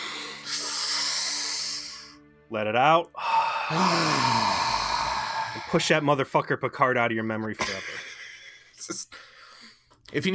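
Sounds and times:
deep breath in: 0:00.0 - 0:02.2, 0:03.2 - 0:05.8
speech: 0:02.5 - 0:04.6, 0:05.5 - 0:08.1, 0:08.8 - 0:09.3, 0:10.1 - 0:10.3.

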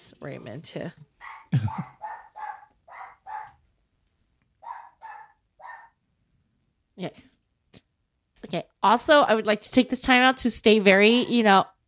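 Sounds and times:
speech: 0:00.2 - 0:02.0, 0:07.0 - 0:07.3, 0:08.5 - 0:11.8
small dog yapping with sharp high-pitched barks: 0:01.2 - 0:03.6, 0:04.6 - 0:06.0.

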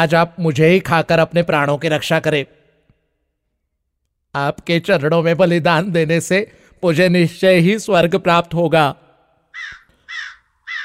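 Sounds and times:
speech: 0:00.0 - 0:02.6, 0:04.4 - 0:09.0
crow cawing: 0:09.5 - 0:10.8.

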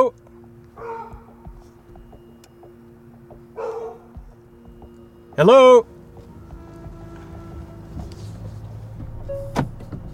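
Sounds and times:
dogs barking in a junkyard: 0:00.7 - 0:01.6, 0:03.5 - 0:04.3
speech: 0:05.4 - 0:05.9.

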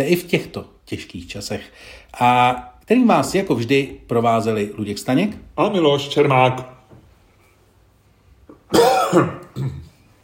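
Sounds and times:
speech: 0:00.0 - 0:06.8, 0:08.7 - 0:09.8
man coughing: 0:08.7 - 0:10.0.

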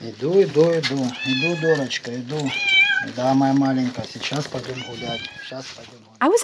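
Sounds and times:
speech: 0:00.0 - 0:06.4
domestic cat meowing: 0:01.1 - 0:03.3, 0:04.6 - 0:05.6.

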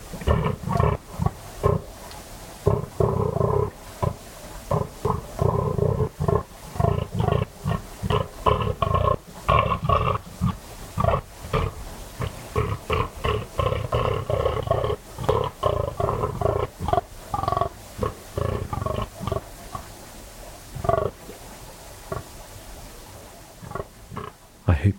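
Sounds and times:
fallow deer buck bellowing during the autumn rut in West Dorset: 0:00.0 - 0:02.0, 0:02.6 - 0:19.9, 0:20.8 - 0:21.2.

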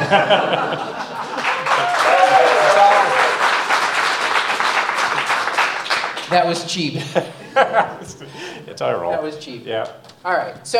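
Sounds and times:
laughter: 0:00.0 - 0:03.2, 0:06.9 - 0:09.2
crowd applauding: 0:00.0 - 0:06.5
speech: 0:00.1 - 0:01.1, 0:06.3 - 0:10.7.

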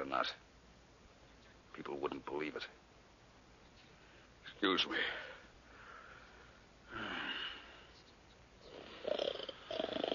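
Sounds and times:
speech: 0:00.1 - 0:00.4, 0:01.8 - 0:02.8, 0:04.4 - 0:05.3, 0:06.9 - 0:07.3
man snoring in slow rasping breaths: 0:08.6 - 0:10.1.

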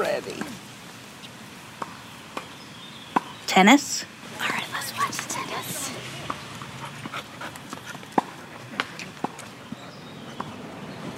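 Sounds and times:
moderate noise: 0:00.0 - 0:11.1
speech: 0:00.2 - 0:00.5, 0:03.6 - 0:04.2
dog panting: 0:06.7 - 0:08.8.

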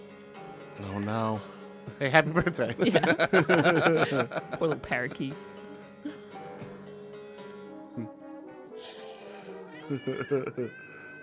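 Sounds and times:
speech: 0:00.8 - 0:05.5, 0:09.9 - 0:10.8
laughter: 0:02.4 - 0:05.2, 0:09.8 - 0:10.9
cat meowing: 0:08.8 - 0:11.2.

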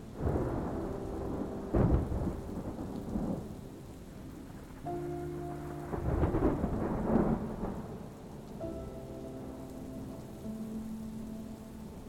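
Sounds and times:
deep rolling thunder: 0:00.0 - 0:08.8
rain murmuring in a storm: 0:00.0 - 0:12.0
soft sustained gentle music tones: 0:00.0 - 0:12.0.

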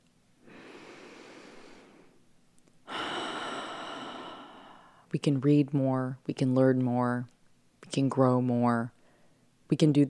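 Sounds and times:
slow deep breath in: 0:00.4 - 0:02.2, 0:02.9 - 0:05.1
louder longer exhale: 0:00.5 - 0:02.2, 0:02.9 - 0:05.0
speech: 0:05.1 - 0:07.3, 0:07.9 - 0:09.0, 0:09.7 - 0:10.0.

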